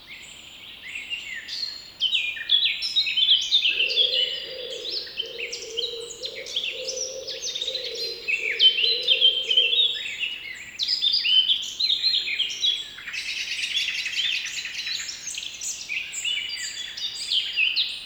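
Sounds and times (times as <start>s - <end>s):
blackcap song: 0.2s - 17.7s
wood pigeon cooing: 3.7s - 10.0s.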